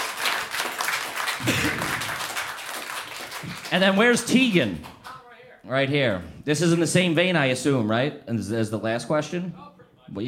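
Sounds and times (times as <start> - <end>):
crowd applauding: 0.0 - 5.2
speech: 1.4 - 1.8, 3.7 - 4.9, 5.7 - 10.2.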